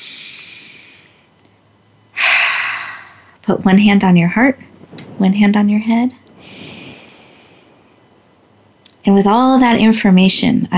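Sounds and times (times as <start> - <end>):
deep breath in: 0.0 - 1.2, 2.2 - 3.4, 6.4 - 7.9
sudden loud sharp inhale: 0.0 - 1.2, 2.2 - 3.4, 6.4 - 7.9
speech: 3.5 - 6.2, 9.1 - 10.7.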